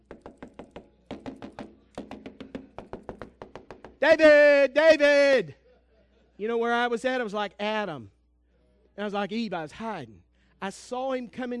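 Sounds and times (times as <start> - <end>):
knocking on the doors of a house: 0.0 - 4.0
speech: 4.0 - 5.6, 6.4 - 8.2, 9.0 - 11.5.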